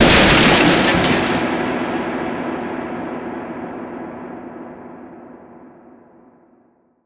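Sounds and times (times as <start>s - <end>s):
wood breaking: 0.0s - 2.2s.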